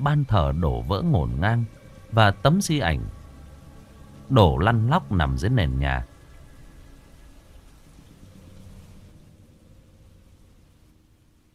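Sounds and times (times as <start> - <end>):
speech: 0.0 - 3.2, 4.3 - 6.1
steady rain easing off after a thunderstorm: 0.0 - 11.5.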